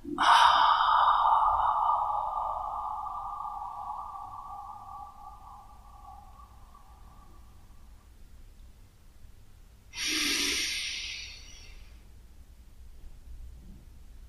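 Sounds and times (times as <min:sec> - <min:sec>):
long slow exhalation during breathing meditation: 0:00.0 - 0:08.1, 0:10.0 - 0:11.9
brief sharper inhalation during breathing meditation: 0:00.1 - 0:07.9, 0:10.0 - 0:12.0.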